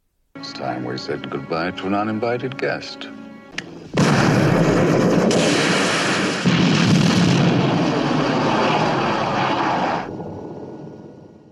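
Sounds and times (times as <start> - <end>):
speech: 0.4 - 3.2, 4.6 - 5.6
missile striking a hovering helicopter: 3.8 - 10.1.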